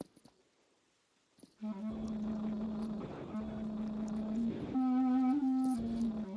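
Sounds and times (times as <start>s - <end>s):
clarinet playing a short phrase of long sustained notes: 1.6s - 6.3s.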